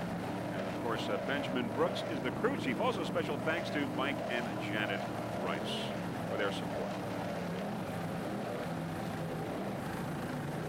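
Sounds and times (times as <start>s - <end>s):
racing powerboat engine throttling during a race: 0.0s - 10.6s
speech: 0.9s - 7.0s.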